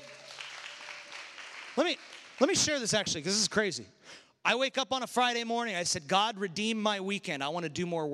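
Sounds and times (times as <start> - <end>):
crowd applauding: 0.0 - 3.4
speech: 1.8 - 8.1.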